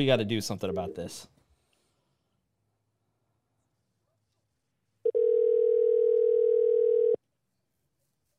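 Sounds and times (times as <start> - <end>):
speech: 0.0 - 1.4
buzzing phone line ring tone: 5.1 - 7.2.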